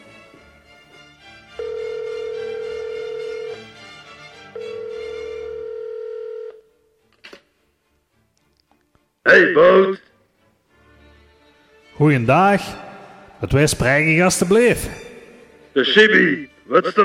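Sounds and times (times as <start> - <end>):
soft musical background: 0.0 - 17.0
telephone call tones as a call is placed: 1.6 - 3.8, 4.5 - 6.7
speech: 9.3 - 10.0, 12.0 - 12.8, 13.4 - 15.0, 15.8 - 17.0.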